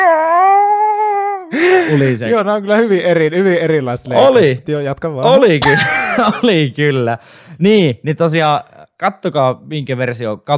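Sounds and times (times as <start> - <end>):
person imitating a howling dog: 0.0 - 1.6
speech: 1.9 - 10.5
laughter: 5.6 - 6.6.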